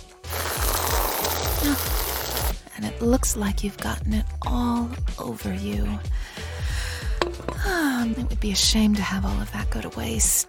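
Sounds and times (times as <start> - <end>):
silver whipped cream can rattling: 0.3 - 2.6
speech: 2.8 - 6.3, 7.3 - 10.4.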